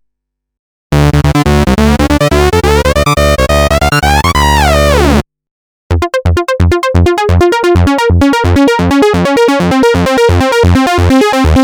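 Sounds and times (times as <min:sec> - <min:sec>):
Moog Source synthesizer: 0:00.9 - 0:05.3, 0:05.9 - 0:11.6.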